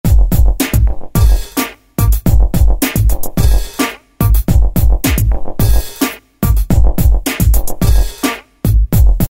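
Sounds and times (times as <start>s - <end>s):
drum kit: 0.0s - 9.2s.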